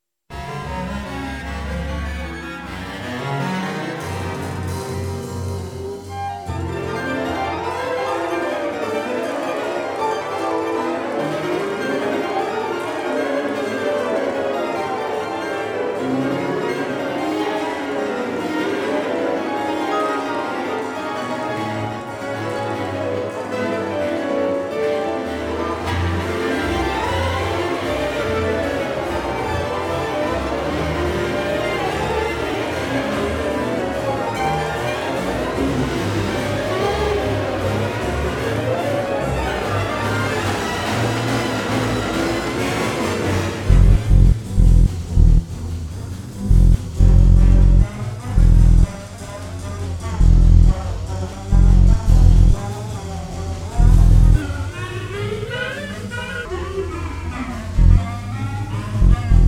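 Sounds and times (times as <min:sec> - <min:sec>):
orchestra: 0:00.4 - 0:59.4.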